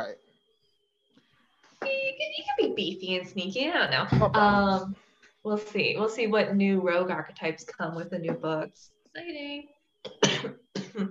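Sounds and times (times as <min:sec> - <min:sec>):
speech: 0:00.0 - 0:00.3, 0:02.2 - 0:11.1
person coughing: 0:10.1 - 0:11.1.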